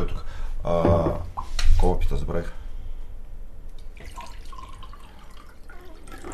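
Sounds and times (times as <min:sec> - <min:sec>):
faint hiss: 0:00.0 - 0:06.3
speech: 0:00.6 - 0:01.2, 0:01.9 - 0:02.6
water pouring into a glass: 0:03.8 - 0:06.3.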